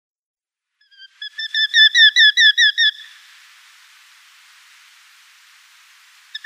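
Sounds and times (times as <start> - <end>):
soft hiss: 0.6 - 6.4
Eurasian hobby nestlings squealing: 0.9 - 3.2.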